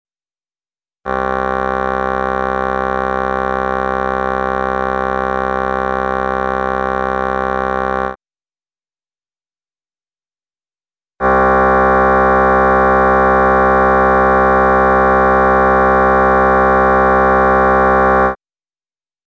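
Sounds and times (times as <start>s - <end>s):
trumpet in equal and adjusted phases played back: 1.1s - 8.2s, 11.2s - 18.4s.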